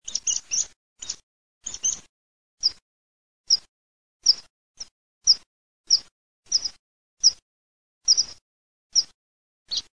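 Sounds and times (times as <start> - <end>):
meadow pipit calling: 0.0 - 2.8, 3.5 - 4.5, 5.3 - 7.4, 8.1 - 9.1, 9.7 - 9.9.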